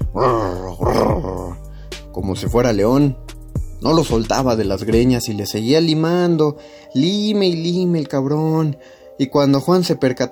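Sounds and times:
person imitating dog growling: 0.0s - 1.6s
speech: 2.3s - 10.3s.

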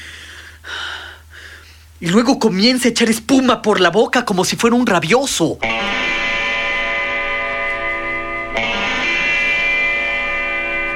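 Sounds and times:
agitated heavy breathing and gasping: 0.0s - 1.9s
speech: 2.0s - 6.0s
steady low hum: 5.6s - 10.9s.

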